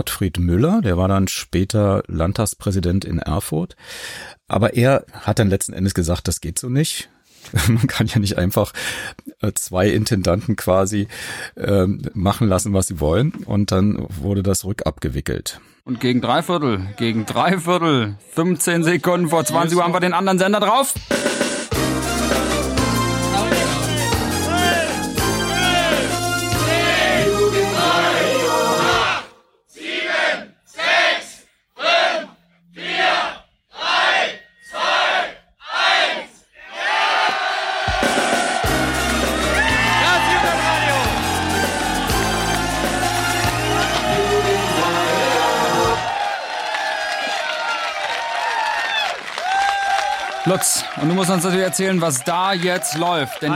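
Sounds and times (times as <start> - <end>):
speech: 0.0 - 21.5, 51.2 - 53.5
laughter: 16.8 - 17.6, 39.6 - 46.0
large crowd cheering and shouting: 22.2 - 31.2, 35.8 - 53.5
crowd chanting in rhythmic bursts: 23.4 - 47.4.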